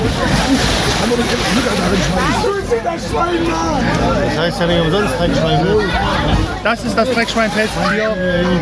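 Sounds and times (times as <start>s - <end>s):
voices calling out: 0.0s - 8.6s
water sloshing and splashing: 0.0s - 8.6s
speech: 1.1s - 8.6s.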